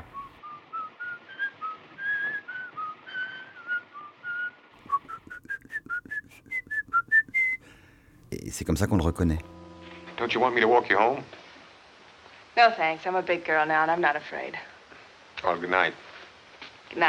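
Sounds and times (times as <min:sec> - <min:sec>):
whistled melody: 0:00.0 - 0:07.9
speech: 0:08.3 - 0:09.6, 0:10.2 - 0:11.4, 0:12.6 - 0:14.7, 0:15.4 - 0:16.0.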